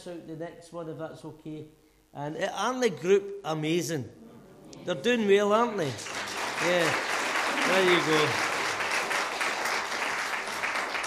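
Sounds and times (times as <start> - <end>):
speech: 0.0 - 8.4
audience clapping for a performing group: 5.8 - 11.0.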